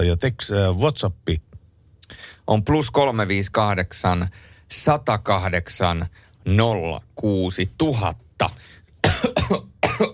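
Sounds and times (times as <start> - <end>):
speech: 0.0 - 1.5, 2.1 - 8.8, 9.5 - 10.1
person coughing after rice cake went down wrong: 9.0 - 10.1.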